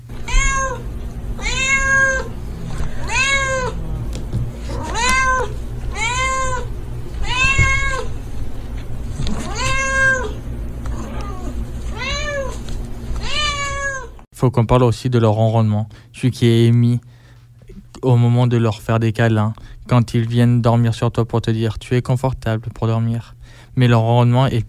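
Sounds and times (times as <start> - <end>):
low hum: 0.0 - 24.6
cat meowing for food: 0.2 - 3.8, 4.7 - 8.2, 9.2 - 12.6, 13.2 - 14.2
speech: 14.4 - 17.1, 18.0 - 24.6.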